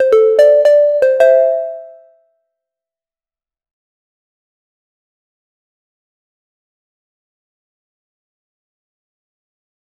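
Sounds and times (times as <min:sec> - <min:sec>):
quick high-pitched game streak sound: 0:00.0 - 0:02.0.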